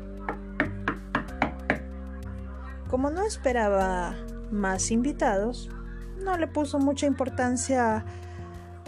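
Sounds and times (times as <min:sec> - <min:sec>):
sharp knocking on a door: 0:00.3 - 0:01.8
speech: 0:02.9 - 0:08.3.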